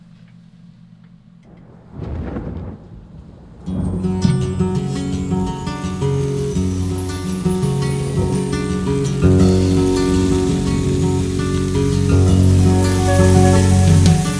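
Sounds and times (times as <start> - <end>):
pouring rain: 1.4 - 14.3
thunder rumble: 1.4 - 14.3
sustained chord-rich instrumental passage: 4.3 - 14.3.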